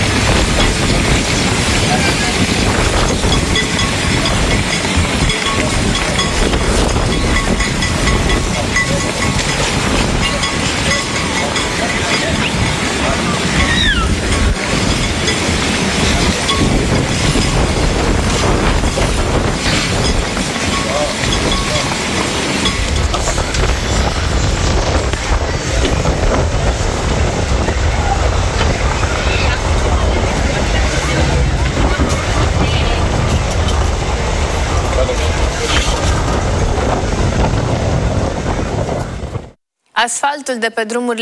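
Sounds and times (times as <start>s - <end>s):
rushing waves on a beach: 0.0s - 39.6s
strong wind on a beach: 0.0s - 39.6s
speech: 40.5s - 41.2s.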